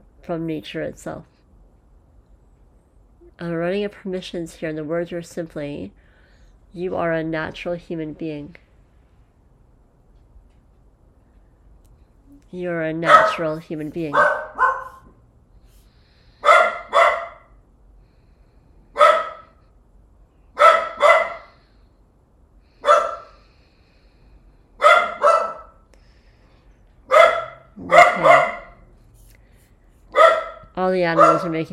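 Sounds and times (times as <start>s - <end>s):
speech: 0.3s - 1.3s, 3.4s - 6.0s, 6.7s - 8.6s, 12.5s - 14.4s, 31.1s - 31.7s
dog barking: 13.0s - 15.1s, 16.4s - 17.5s, 19.0s - 19.6s, 20.6s - 21.6s, 22.8s - 23.4s, 24.8s - 25.8s, 27.1s - 28.9s, 30.1s - 31.7s.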